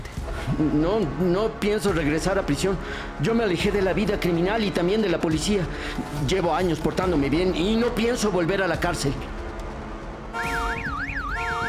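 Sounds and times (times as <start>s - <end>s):
speech: 0.5s - 9.4s
car alarm wailing: 10.4s - 11.6s.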